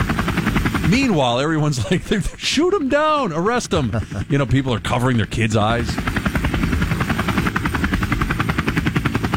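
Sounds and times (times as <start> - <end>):
helicopter rotor thumping: 0.0 - 9.3
speech: 0.9 - 6.3
laughter: 1.4 - 5.2.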